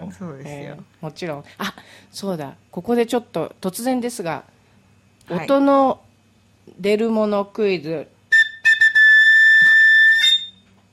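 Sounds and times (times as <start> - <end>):
speech: 0.1 - 4.6, 5.3 - 6.1, 6.7 - 8.1
Irish whistle playing: 8.3 - 10.7.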